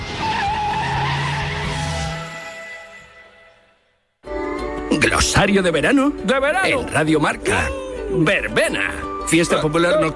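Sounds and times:
car skidding with tires squealing: 0.0s - 2.8s
car engine roaring: 0.0s - 3.2s
speech: 5.0s - 10.1s.

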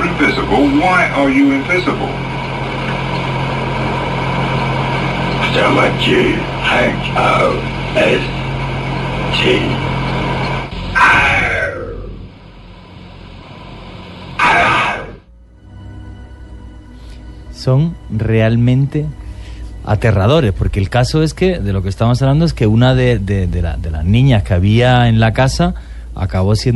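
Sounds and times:
constant low drone: 0.0s - 26.7s
speech: 0.2s - 2.3s, 5.5s - 8.4s, 9.4s - 9.9s, 17.6s - 19.2s, 19.9s - 26.7s
eerie demonic-sounding growls: 10.9s - 12.3s.

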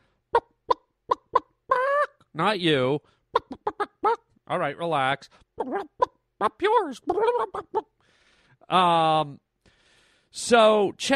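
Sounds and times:
chicken clucking and squawking: 0.3s - 2.2s, 3.3s - 4.2s, 5.6s - 7.9s
speech: 2.4s - 7.9s, 8.7s - 9.4s, 10.3s - 11.1s.

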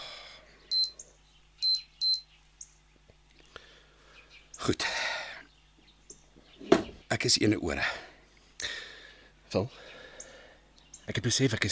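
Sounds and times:
low steady hum: 0.0s - 11.7s
kitchen timer being set for bread dough: 0.7s - 1.0s, 1.6s - 2.3s
speech: 4.6s - 5.0s, 7.2s - 8.1s, 9.5s - 9.9s, 11.1s - 11.7s.

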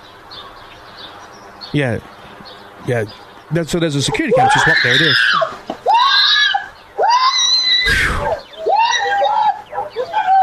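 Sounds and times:
speech: 1.7s - 5.4s
woman screaming during attack on security camera footage: 4.3s - 10.4s.

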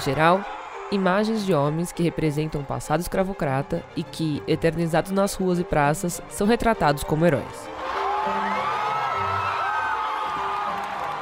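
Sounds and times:
large outdoor protest crowd cheering and whooping as statue falls: 0.0s - 1.8s, 7.7s - 11.1s
speech: 0.0s - 8.4s.

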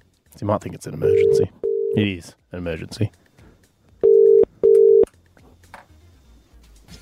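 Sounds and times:
speech: 0.4s - 3.2s
phone ringing tone while calling: 1.0s - 2.0s, 4.0s - 5.1s.

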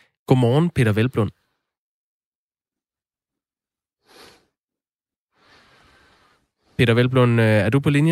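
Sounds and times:
speech: 0.3s - 1.4s, 6.8s - 8.1s
faint breathing over a phone line: 4.0s - 4.6s, 5.3s - 6.8s.

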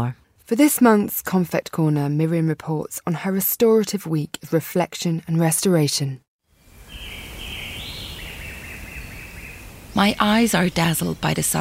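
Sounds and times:
speech: 0.0s - 6.2s, 10.0s - 11.5s
birds twittering in the trees: 6.7s - 11.5s.

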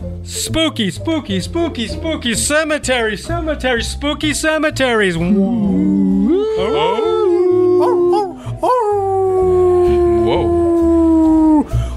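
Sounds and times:
speech: 0.2s - 7.2s
dog howling: 5.3s - 11.7s.

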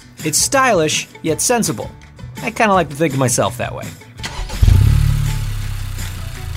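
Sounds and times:
speech: 0.2s - 4.0s
turbocharged Honda Civic engine cranking, starting and idling: 4.2s - 6.5s.

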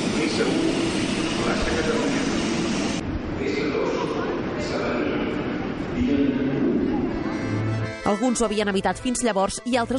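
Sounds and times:
faint voices inside the carriage: 0.0s - 2.6s, 3.4s - 7.6s
metro train running along the track between stations: 0.0s - 8.0s
speech: 8.0s - 9.9s.

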